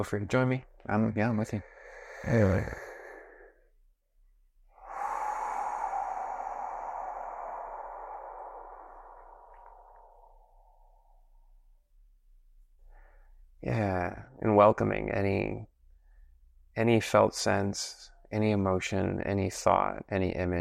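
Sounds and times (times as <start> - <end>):
speech: 0.0 - 2.9, 13.7 - 15.7, 16.8 - 20.5
slow deep breath taken to ground and center: 1.5 - 3.8, 4.6 - 11.8, 12.8 - 13.5.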